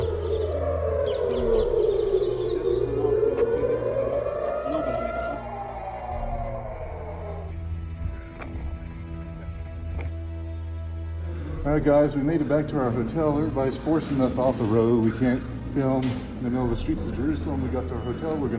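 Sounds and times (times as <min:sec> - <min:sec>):
air raid sirens wailing on the outskirts of Jerusalem during a rocket attack: 0:00.0 - 0:18.5
speech: 0:11.8 - 0:18.5.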